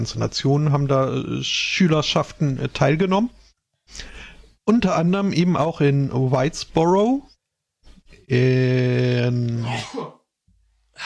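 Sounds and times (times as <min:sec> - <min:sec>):
speech: 0:00.0 - 0:04.1, 0:04.7 - 0:07.3, 0:08.3 - 0:10.2
person sneezing: 0:09.6 - 0:10.2.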